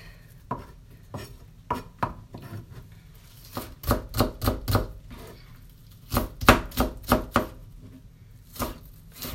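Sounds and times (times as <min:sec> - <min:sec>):
knife chopping an onion on a cutting board: 0:00.5 - 0:02.6, 0:03.5 - 0:05.3, 0:06.1 - 0:07.6.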